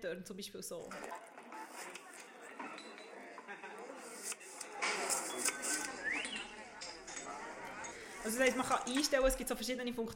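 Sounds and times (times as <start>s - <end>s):
speech: 0.0s - 2.0s, 8.2s - 10.1s
murmur of overlapping chatter in a busy bar: 0.8s - 10.1s
glasses clinking in a bar: 2.6s - 3.7s, 5.1s - 8.0s.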